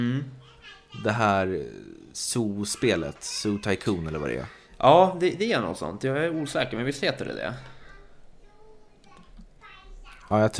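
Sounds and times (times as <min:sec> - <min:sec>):
young girl playing and chattering while running around: 0:00.0 - 0:04.8, 0:07.8 - 0:10.4
speech: 0:00.0 - 0:07.8, 0:10.3 - 0:10.5.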